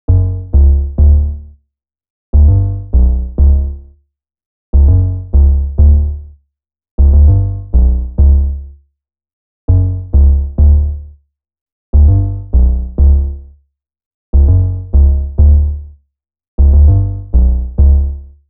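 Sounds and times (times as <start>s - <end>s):
clean 808 bass notes: 0.1s - 1.5s, 2.4s - 3.9s, 4.8s - 6.3s, 7.0s - 8.7s, 9.7s - 11.1s, 12.0s - 13.5s, 14.4s - 15.9s, 16.6s - 18.3s.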